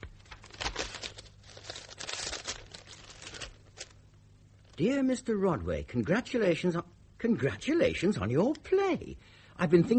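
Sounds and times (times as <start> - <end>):
paper envelope being opened, crinkling and tearing: 0.0 - 4.0
speech: 4.8 - 9.9.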